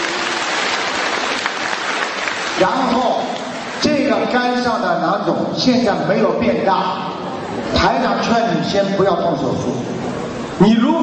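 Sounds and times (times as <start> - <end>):
audience applause: 0.0 - 4.3
speech: 2.6 - 3.1, 4.3 - 10.0, 10.6 - 11.0.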